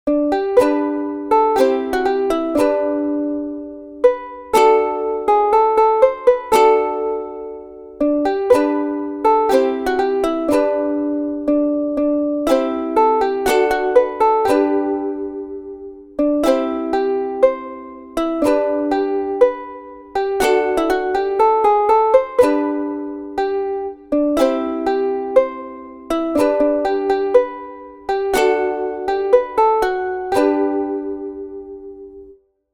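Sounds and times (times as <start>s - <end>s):
ukulele music: 0.1s - 32.4s.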